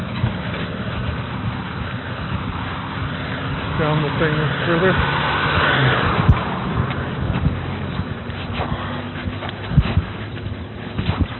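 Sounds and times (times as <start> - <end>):
moving vehicle rumble: 0.0 - 11.3
speech: 3.8 - 5.2
German Shepherd dog whimpering: 8.5 - 10.4.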